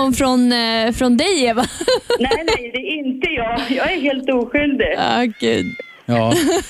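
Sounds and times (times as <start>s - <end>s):
speech: 0.0s - 6.6s
laughter: 1.6s - 2.7s, 6.1s - 6.6s
cat meowing from inside a studio control desk: 5.3s - 6.3s
person exclaiming: 5.4s - 6.4s.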